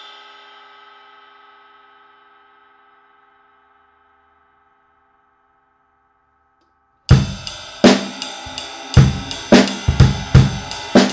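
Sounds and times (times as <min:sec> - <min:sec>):
20 inch ride cymbal: 0:07.1 - 0:11.1.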